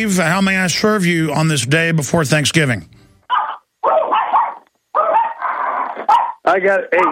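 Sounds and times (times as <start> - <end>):
speech: 0.0 - 3.0, 6.5 - 7.1
Yorkshire terrier barking: 3.3 - 6.4.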